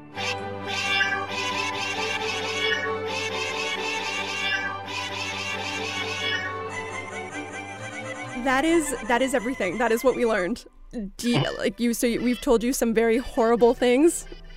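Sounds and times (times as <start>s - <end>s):
chorus of cats meowing: 0.2s - 8.0s
speech: 8.4s - 14.5s.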